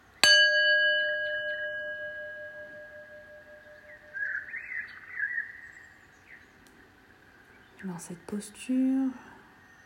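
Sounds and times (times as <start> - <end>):
meditation gong struck and ringing out: 0.2 - 4.2
faint bird chirps: 2.8 - 6.7, 9.2 - 9.8
speech: 7.8 - 9.3.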